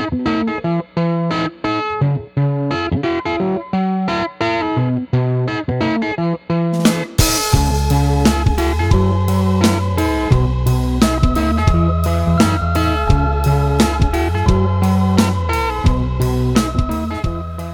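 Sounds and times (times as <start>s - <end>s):
gritty guitar with British rock-style distortion: 0.0s - 17.7s
drums: 6.7s - 17.7s
slightly out-of-tune keyboard: 6.8s - 17.7s.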